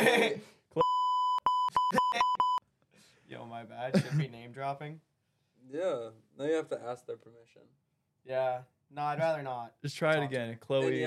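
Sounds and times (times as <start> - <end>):
censor bleep tone: 0.8 - 2.6
speech: 3.6 - 11.0.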